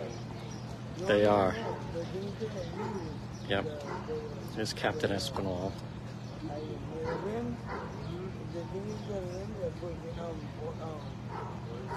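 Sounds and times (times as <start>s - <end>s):
indistinct voices murmuring: 0.0s - 11.9s
speech: 1.0s - 11.9s
dog barking: 1.6s - 2.0s, 2.7s - 3.2s, 3.8s - 4.2s, 7.0s - 8.1s, 11.3s - 11.9s.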